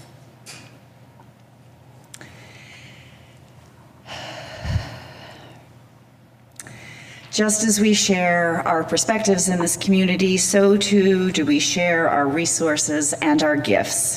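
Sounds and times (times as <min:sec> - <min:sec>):
people at a Sunday morning community gathering breathing deeply: 0:02.2 - 0:05.7, 0:06.6 - 0:07.3
speech: 0:07.4 - 0:14.1.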